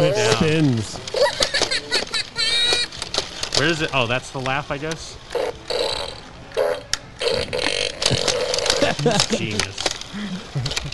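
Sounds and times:
speech: 0.0s - 1.2s, 3.6s - 5.4s, 9.0s - 9.9s
laughter: 0.0s - 2.9s, 8.8s - 10.9s
toy blaster electronic fart sound effect: 5.4s - 9.0s.

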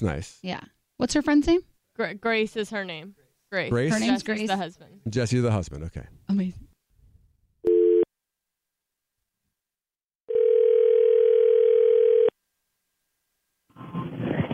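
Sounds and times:
speech: 0.0s - 6.7s
ringback tone of an outgoing phone call: 7.7s - 8.1s, 10.3s - 12.3s.

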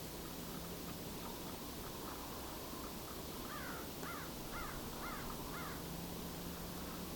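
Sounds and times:
constant hiss of outdoor noise: 0.0s - 7.1s
crow cawing: 3.5s - 5.8s.

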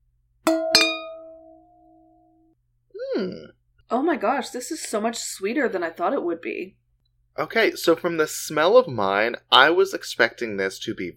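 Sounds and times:
wine glasses clinking in a toast: 0.5s - 1.6s
speech: 3.2s - 6.8s, 7.4s - 11.1s.

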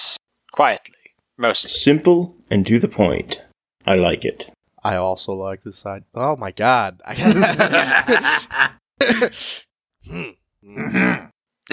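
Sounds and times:
speech: 0.6s - 11.7s
laughter: 7.1s - 9.4s
person coughing fit with throaty hacks: 10.1s - 11.7s.

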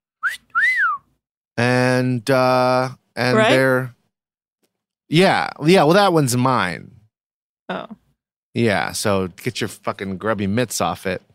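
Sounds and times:
person whistling imitating a dolphin signature whistle: 0.1s - 1.1s
speech: 1.6s - 4.0s, 5.1s - 6.9s, 7.7s - 8.0s, 8.6s - 11.3s
brief buzzy vocal sound: 3.2s - 3.7s.

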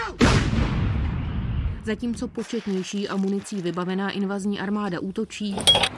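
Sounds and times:
loud artillery blast near Robotyne in Ukraine: 0.2s - 1.8s
heavy artillery fire near Robotyne in Zaporizhzhia region, Ukraine: 0.2s - 3.0s
speech: 1.9s - 5.9s.

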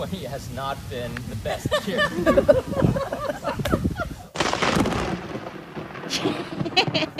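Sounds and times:
speech: 0.0s - 3.4s
laughter: 1.4s - 4.4s, 6.2s - 7.1s
loud thunder crack from a lightning strike: 4.3s - 7.1s.

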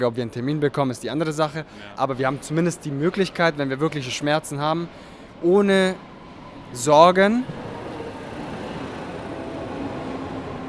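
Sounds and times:
speech: 0.0s - 6.1s, 6.7s - 7.6s
U-Bahn subway train rumbling: 2.3s - 10.6s.

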